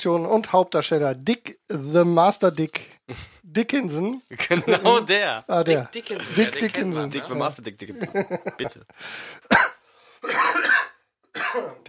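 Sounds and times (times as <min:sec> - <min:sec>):
speech: 0:00.0 - 0:10.5, 0:11.5 - 0:11.8
laughter: 0:04.3 - 0:05.4, 0:06.0 - 0:08.9
person in a coughing fit with harsh raspy coughs: 0:09.5 - 0:11.8.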